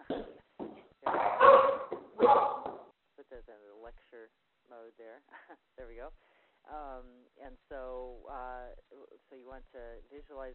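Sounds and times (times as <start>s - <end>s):
dog barking excitedly in harsh bursts: 1.1s - 2.9s
speech: 5.8s - 10.5s.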